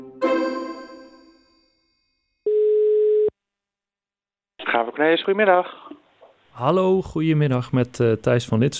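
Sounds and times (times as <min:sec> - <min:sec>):
bell-like chimes: 0:00.2 - 0:02.5
telephone ringing tone while calling someone: 0:02.5 - 0:03.3
speech: 0:05.0 - 0:05.9, 0:06.6 - 0:08.7.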